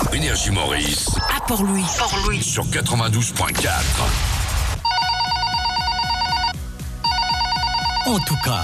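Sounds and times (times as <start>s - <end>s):
speech: 0.1s - 4.4s, 8.1s - 8.6s
telephone ringing in a rapid electronic trill: 4.9s - 8.6s.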